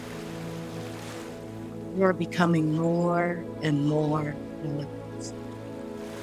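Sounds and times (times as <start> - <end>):
slow gentle waves lapping: 0.0 - 2.1, 4.4 - 6.2
speech: 2.0 - 5.4.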